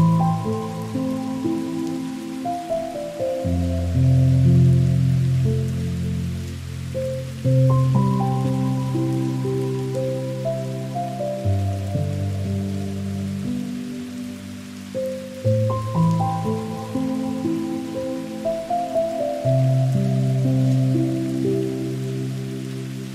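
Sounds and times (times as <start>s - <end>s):
faint steady hiss of rain: 0.0s - 23.1s
soft slow music of warm low chords: 0.0s - 23.1s.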